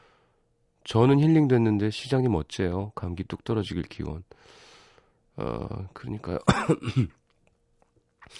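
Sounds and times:
speech: 0.9s - 4.6s, 5.4s - 7.2s
rough coughs: 6.4s - 7.2s.

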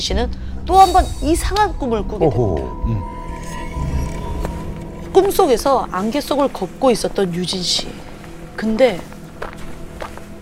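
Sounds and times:
speech: 0.0s - 3.1s, 5.2s - 8.0s, 8.6s - 9.1s
soft footsteps: 4.4s - 10.3s.

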